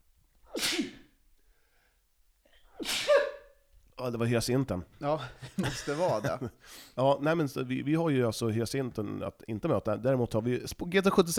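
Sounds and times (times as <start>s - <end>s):
person sneezing: 0.5s - 1.2s, 2.5s - 3.5s
speech: 4.0s - 11.3s
laughter: 5.2s - 6.6s.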